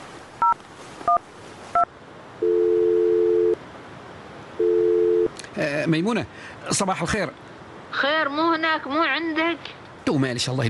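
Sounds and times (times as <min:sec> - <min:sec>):
long steady telephone ringing tones on the line: 0:02.4 - 0:03.6, 0:04.6 - 0:05.3
telephone keypad tones from a call being dialed: 0:02.4 - 0:03.6
speech: 0:05.9 - 0:10.6.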